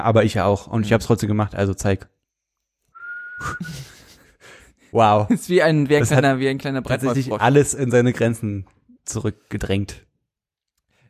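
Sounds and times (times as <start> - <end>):
speech: 0.0 - 2.2, 3.4 - 4.0, 4.9 - 10.1
person whistling a single sustained note: 2.9 - 3.9
laughter: 3.4 - 4.4.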